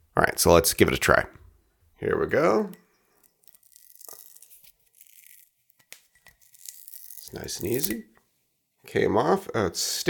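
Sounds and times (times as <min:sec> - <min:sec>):
speech: 0:00.4 - 0:01.4, 0:02.0 - 0:02.8, 0:07.3 - 0:08.1, 0:08.8 - 0:10.0
pull-tab strip tearing through the wax seal on a bottle: 0:03.2 - 0:08.0.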